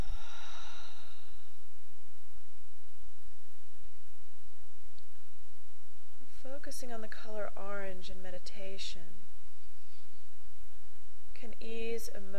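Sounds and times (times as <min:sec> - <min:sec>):
deep breath during a guided meditation: 0:00.0 - 0:01.6
speech: 0:06.6 - 0:09.3, 0:11.4 - 0:12.3.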